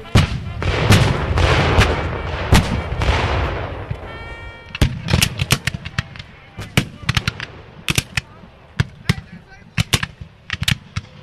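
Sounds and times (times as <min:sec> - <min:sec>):
cannon fire at a Civil War battle reenactment: 0:00.1 - 0:04.1, 0:04.8 - 0:09.2.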